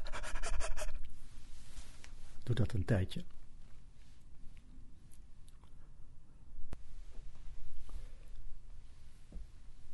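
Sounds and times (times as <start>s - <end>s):
rapid dog-like panting breaths in a breathing exercise: 0.0s - 1.0s
speech: 2.5s - 3.3s.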